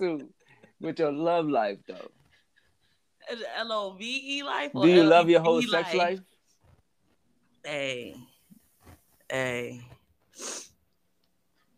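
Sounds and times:
speech: 0:00.0 - 0:02.2, 0:03.2 - 0:06.3, 0:07.6 - 0:08.3, 0:09.3 - 0:10.7
short breathy sniff: 0:10.3 - 0:10.8.

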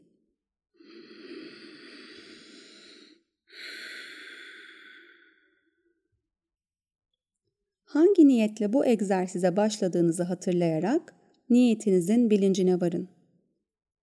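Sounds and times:
slow deep breath in and out: 0:00.8 - 0:05.9
speech: 0:08.0 - 0:13.2.

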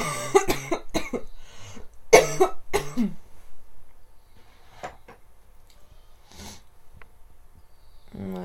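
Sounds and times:
person coughing harshly: 0:00.0 - 0:01.3, 0:02.1 - 0:03.2.

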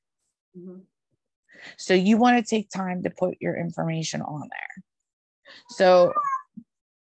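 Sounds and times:
speech: 0:00.6 - 0:04.9, 0:05.5 - 0:06.3
cat meowing: 0:06.0 - 0:06.6.

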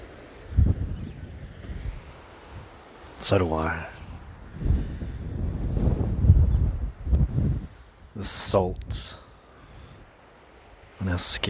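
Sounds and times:
gusty wind: 0:00.0 - 0:11.4
ocean waves washing onto a shore: 0:00.0 - 0:11.4
speech: 0:03.2 - 0:04.0, 0:08.2 - 0:09.2, 0:11.0 - 0:11.4.

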